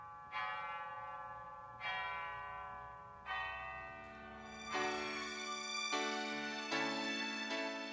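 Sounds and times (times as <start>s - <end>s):
church bell ringing: 0.0s - 7.9s.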